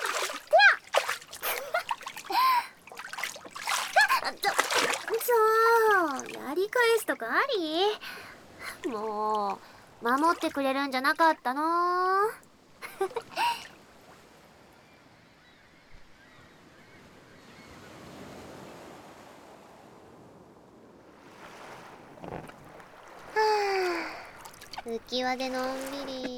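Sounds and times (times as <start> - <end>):
gentle waves lapping on water: 0.0 - 14.8, 21.0 - 26.3
speech: 6.7 - 8.2, 8.8 - 12.4, 13.0 - 13.4, 25.0 - 26.3.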